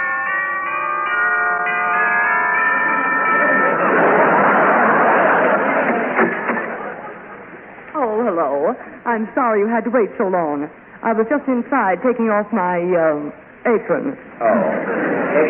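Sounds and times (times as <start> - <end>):
doorbell chime ringing at a small house: 0.0 - 4.5
laughter: 2.9 - 7.7, 14.4 - 15.4
speech: 9.2 - 15.4.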